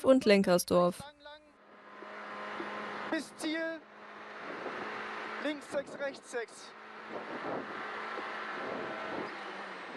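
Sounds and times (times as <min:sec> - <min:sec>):
speech: 0:00.0 - 0:01.2, 0:03.2 - 0:03.9, 0:05.4 - 0:08.9
rally car engine roaring at the Lößnitz rally sprint in Germany: 0:01.6 - 0:09.9
rally car tires squealing: 0:01.7 - 0:09.9
gusty wind noise: 0:06.9 - 0:09.9.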